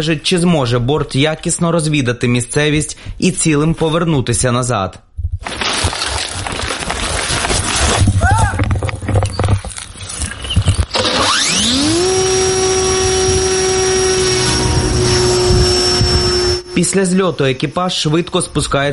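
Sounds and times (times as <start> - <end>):
speech: 0.0 - 5.6, 16.8 - 18.9
rustling: 5.4 - 10.9
reconnaissance drone motor whining at launch: 10.9 - 18.5.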